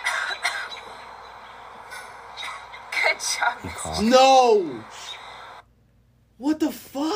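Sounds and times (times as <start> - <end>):
bird mimicking a human cough: 0.0 - 0.9
speech: 3.2 - 5.0, 6.4 - 7.1.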